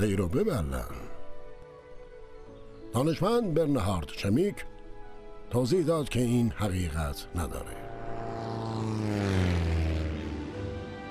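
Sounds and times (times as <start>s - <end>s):
speech: 0.0s - 1.1s, 2.9s - 4.7s, 5.5s - 7.8s
propeller airplane droning overhead: 7.4s - 11.0s.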